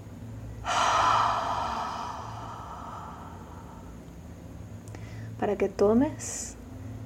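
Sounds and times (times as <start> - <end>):
long audible exhale during a guided breathing exercise: 0.6 - 4.0
person inhaling deeply during a guided breathing exercise: 0.6 - 4.0
speech: 5.4 - 6.6.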